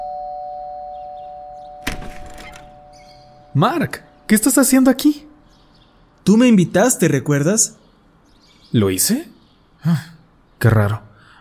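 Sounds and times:
door being opened: 0:01.8 - 0:03.3
speech: 0:03.6 - 0:05.3, 0:06.3 - 0:07.8, 0:08.7 - 0:11.1.

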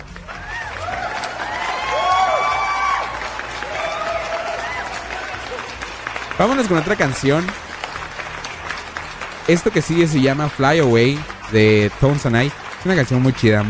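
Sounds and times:
crowd applauding: 0:00.0 - 0:13.6
crowd shouting excitedly: 0:00.4 - 0:05.6
speech: 0:06.4 - 0:07.6, 0:09.5 - 0:13.6.

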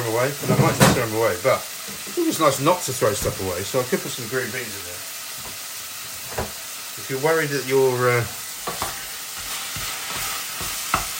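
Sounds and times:
minced beef frying in a pan: 0:00.0 - 0:11.1
speech: 0:00.2 - 0:05.1, 0:07.1 - 0:08.8
utensil stirring minced beef in a pan: 0:08.2 - 0:11.1.

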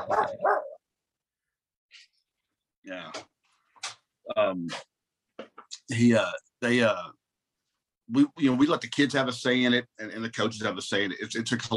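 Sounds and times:
dog barking: 0:00.0 - 0:00.8
speech: 0:02.9 - 0:03.3, 0:04.3 - 0:04.9, 0:05.9 - 0:07.2, 0:08.1 - 0:11.7.

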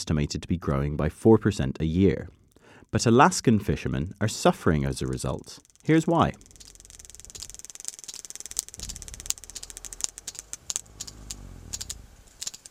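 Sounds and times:
speech: 0:00.0 - 0:06.5
sperm whale clicking while removing black cod from a fishing line: 0:04.2 - 0:12.6.

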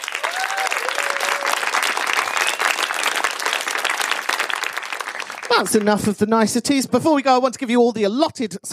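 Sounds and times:
live audience applause: 0:00.0 - 0:06.1
faint whistles in a crowd: 0:02.1 - 0:03.1
speech: 0:05.5 - 0:08.7.

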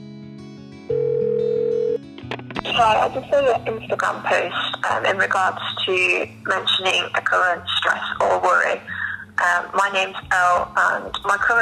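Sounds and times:
telephone tone beep before a voicemail message: 0:00.9 - 0:02.0
speech: 0:02.8 - 0:11.5.

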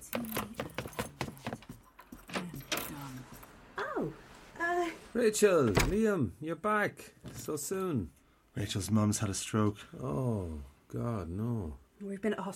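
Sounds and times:
keys jangling and clinking: 0:00.2 - 0:03.6
speech: 0:05.2 - 0:12.5.

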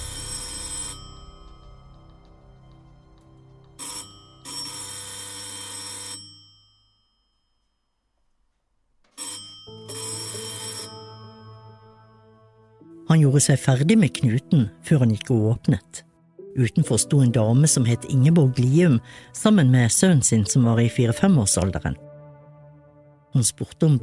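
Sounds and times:
electric doorbell ringing with harsh metallic trill: 0:00.0 - 0:02.2, 0:03.8 - 0:07.8, 0:09.2 - 0:12.4
speech: 0:13.1 - 0:22.1, 0:23.3 - 0:24.0.

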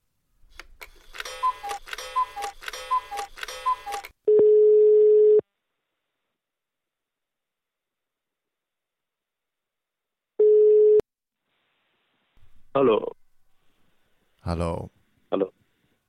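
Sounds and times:
electronic dialing pulses of a phone call: 0:01.0 - 0:04.1
phone ringback tone on the caller's end: 0:01.2 - 0:05.4, 0:10.4 - 0:11.0
speech: 0:14.5 - 0:14.9.

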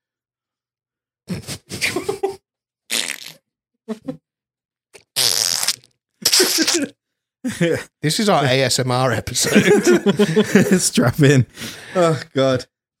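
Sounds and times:
laughter: 0:01.5 - 0:02.4, 0:09.3 - 0:12.2
sputtering fart sounds: 0:02.9 - 0:03.4, 0:05.0 - 0:06.9
speech: 0:03.9 - 0:04.2, 0:07.6 - 0:12.7.

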